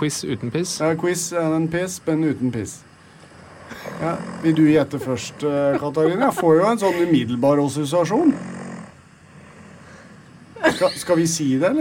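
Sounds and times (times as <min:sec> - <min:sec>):
speech: 0:00.0 - 0:02.9, 0:03.7 - 0:08.5, 0:10.8 - 0:11.7
deep rumbling raspy snore: 0:03.4 - 0:05.7, 0:08.0 - 0:10.3
laughter: 0:03.7 - 0:07.4, 0:10.6 - 0:11.3.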